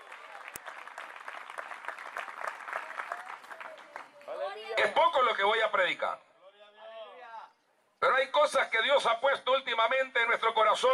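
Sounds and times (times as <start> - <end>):
congregation applauding: 0.0 - 4.4
speech: 4.8 - 6.2, 8.1 - 10.9.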